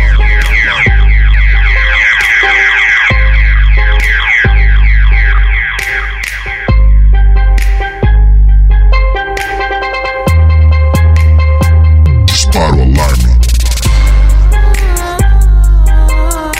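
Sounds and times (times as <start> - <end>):
car alarm wailing with sweeping electronic tones: 0.0 - 6.8
booming pulsing bass beat: 0.0 - 9.6, 10.3 - 16.5.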